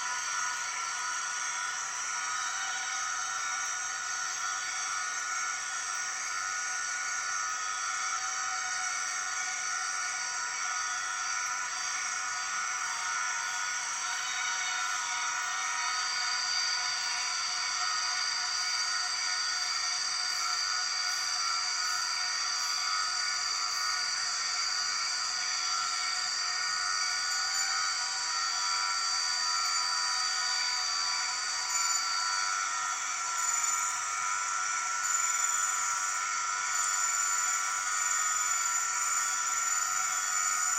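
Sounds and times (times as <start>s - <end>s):
empress cicada droning: 0.0s - 40.7s.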